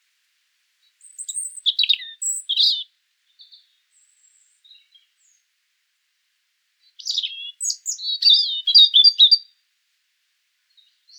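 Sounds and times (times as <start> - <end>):
European robin song: 0.9 - 5.4, 6.9 - 9.5.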